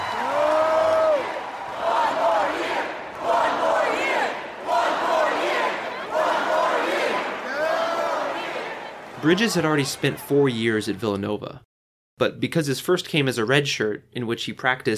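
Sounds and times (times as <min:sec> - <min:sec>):
large crowd of fans chanting in unison in a campus arena: 0:00.2 - 0:10.2
speech: 0:09.2 - 0:14.9.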